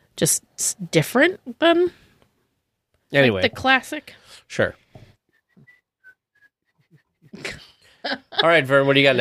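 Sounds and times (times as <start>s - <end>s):
speech: 0.2s - 2.0s, 3.1s - 4.8s, 7.3s - 9.2s
person whistling a short bouncy cartoon tune: 5.4s - 7.1s.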